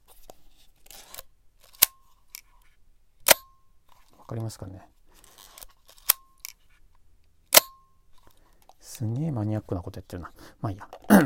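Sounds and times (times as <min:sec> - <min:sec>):
film camera shutter snapping: 0:03.2 - 0:03.5, 0:07.5 - 0:07.8
speech: 0:04.3 - 0:05.0, 0:09.0 - 0:11.2.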